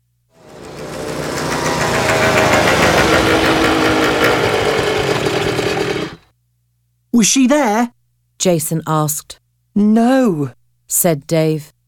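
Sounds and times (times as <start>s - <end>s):
motorbike engines starting and running: 0.4s - 6.2s
speech: 7.1s - 11.8s.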